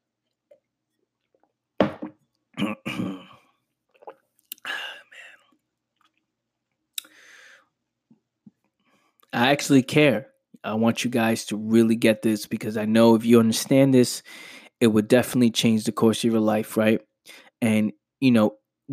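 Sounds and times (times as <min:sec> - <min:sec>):
breathy throat noises: 0:02.6 - 0:05.6
person sipping and swallowing water: 0:03.9 - 0:06.3
speech: 0:09.4 - 0:18.9.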